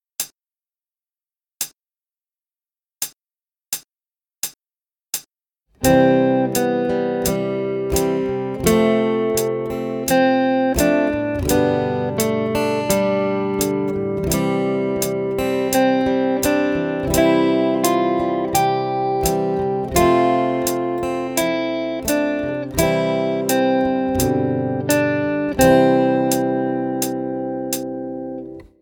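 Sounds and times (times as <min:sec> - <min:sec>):
three guitar strings played fast: 0:05.8 - 0:28.7.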